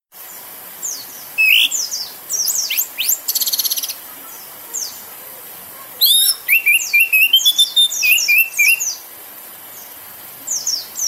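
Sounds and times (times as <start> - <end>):
steady background hiss: 0.2 - 11.0
orange-headed thrush singing intensely: 0.9 - 4.0, 6.0 - 9.0.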